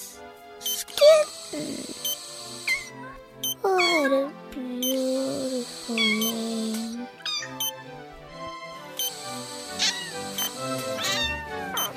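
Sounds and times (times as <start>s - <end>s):
soft steady tonal background: 0.0s - 11.9s
speech: 1.5s - 1.9s
kitten meowing: 7.2s - 7.6s, 9.8s - 10.3s, 10.9s - 11.9s.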